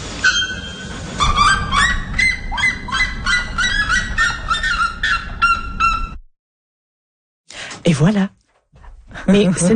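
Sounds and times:
harsh honking calls of two birds: 0.2s - 6.2s
speech: 7.9s - 8.4s, 9.2s - 9.7s.

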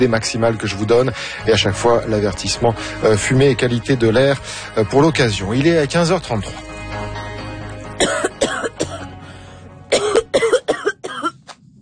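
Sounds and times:
speech: 0.0s - 7.2s
person coughing harshly: 8.0s - 9.1s, 9.9s - 11.5s.

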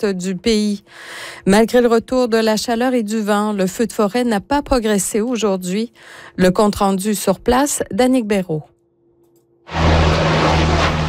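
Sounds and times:
speech: 0.0s - 8.7s
Canadair water bomber firefighting aircraft flying over a forest fire: 9.7s - 11.0s.

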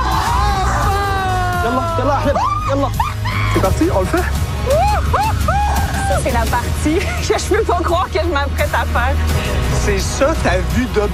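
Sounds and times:
group of people yelling and whooping setting off to tackle a cliff: 0.0s - 3.7s, 4.6s - 6.4s
speech: 2.0s - 11.1s.

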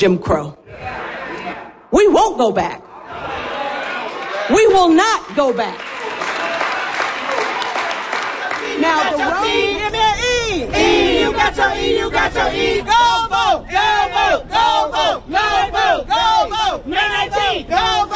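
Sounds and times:
speech: 0.0s - 1.0s, 1.9s - 3.3s, 4.5s - 5.8s, 8.8s - 18.1s
large crowd chanting in unison: 0.6s - 1.9s, 2.9s - 4.6s, 6.0s - 18.1s.

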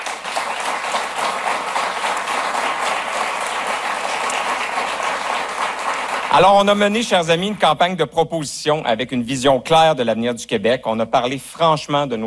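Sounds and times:
crowd applauding: 0.0s - 7.0s
speech: 6.3s - 12.2s.

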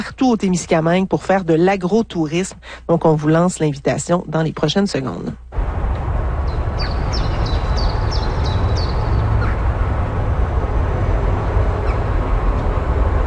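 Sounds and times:
speech: 0.0s - 5.8s
low rumble of surrounding city noise: 0.0s - 13.2s
bird chirping: 6.5s - 9.6s.

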